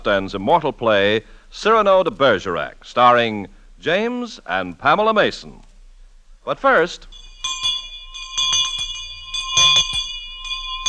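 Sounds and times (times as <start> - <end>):
speech: 0.0 - 5.7, 6.4 - 7.6
bell ringing with bright sustained metallic tones: 7.1 - 10.8.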